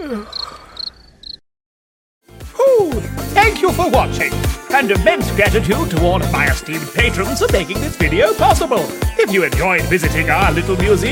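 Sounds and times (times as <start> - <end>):
speech: 0.1 - 0.4, 3.7 - 11.0
crickets chirping: 0.1 - 1.4.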